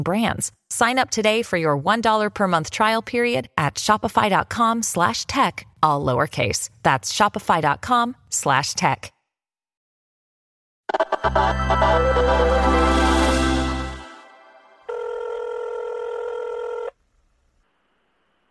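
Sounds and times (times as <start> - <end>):
speech: 0.0 - 9.2, 10.9 - 13.2
telephone ringing with buzzy electronic tones before a voicemail greeting: 14.6 - 17.0.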